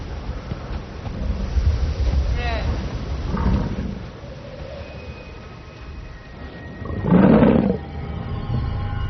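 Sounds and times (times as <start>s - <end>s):
blizzard wind blowing: 0.0s - 9.0s
low animal bellows: 6.3s - 8.6s.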